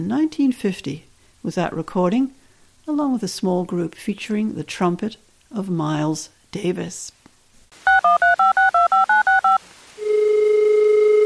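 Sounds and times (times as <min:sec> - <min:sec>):
speech: 0:00.0 - 0:07.2
telephone keypad dialing tones: 0:07.9 - 0:11.2.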